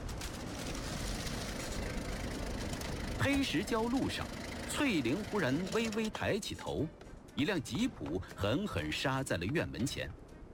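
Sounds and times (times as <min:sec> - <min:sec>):
car engine accelerating at speed: 0:00.2 - 0:06.1
speech: 0:03.2 - 0:10.2.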